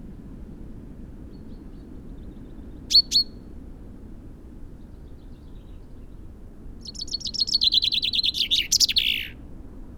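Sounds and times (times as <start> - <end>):
common chaffinch Fringilla coelebs song: 2.9 - 3.3, 6.8 - 9.4.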